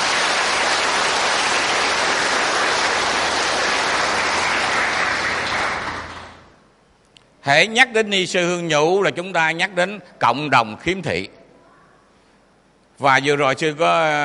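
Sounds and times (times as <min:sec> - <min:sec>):
crowd applause: 0:00.0 - 0:06.6
speech: 0:07.4 - 0:11.4, 0:13.0 - 0:14.2.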